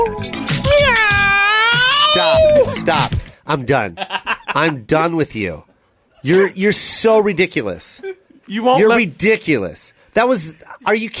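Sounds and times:
person imitating a cat meow during a freestyle rap: 0.6 - 2.8
speech: 2.9 - 11.1.

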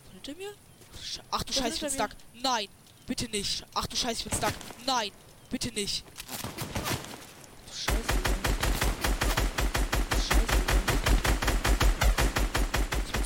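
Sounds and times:
speech: 0.2 - 6.5
rapid automatic video game gunfire: 7.9 - 13.2.

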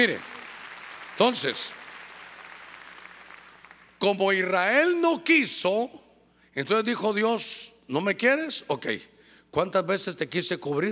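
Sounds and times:
speech: 0.0 - 0.3, 1.2 - 1.8, 4.0 - 6.0, 6.6 - 10.9
audience clapping hands loudly: 0.0 - 4.0.

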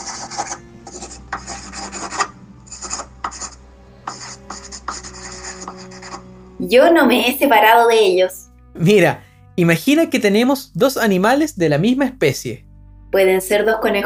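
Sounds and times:
pencil scribbling on paper: 0.0 - 6.3
speech: 6.6 - 14.0.

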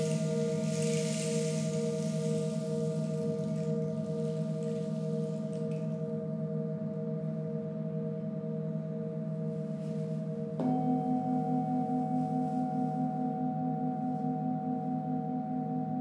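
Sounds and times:
bright shimmering rattle: 0.0 - 6.3
singing bowl struck: 0.0 - 7.7, 10.2 - 16.0
singing bowls humming in layered tones: 0.0 - 16.0.

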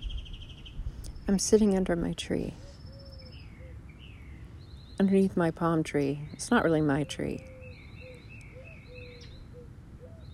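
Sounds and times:
birds chirping and calling outdoors: 0.0 - 10.3
speech: 1.3 - 2.6, 5.0 - 7.5.

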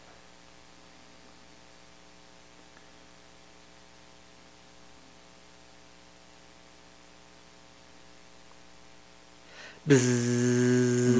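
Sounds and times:
loud steady electronic hum: 6.8 - 11.1.

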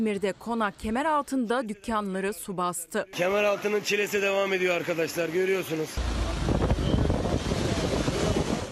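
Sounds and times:
speech: 0.0 - 6.2
crashing surf at the coast: 5.9 - 8.7
strong storm wind at the coast roaring across the microphone: 6.0 - 8.7.

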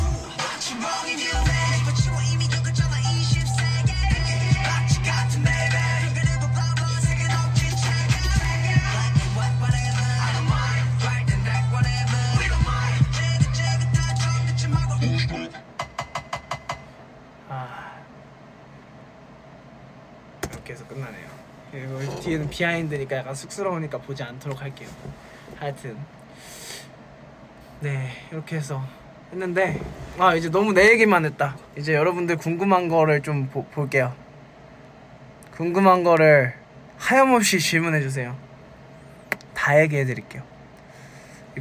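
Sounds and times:
person singing a song chorus: 0.0 - 15.6
pounding beat: 0.0 - 16.9
speech: 22.6 - 26.2, 27.8 - 34.2, 35.6 - 38.4, 39.6 - 40.5.

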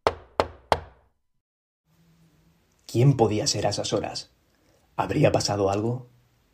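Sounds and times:
firm knocks on a wooden front door: 0.0 - 1.0
speech: 2.9 - 4.4, 5.0 - 6.1.

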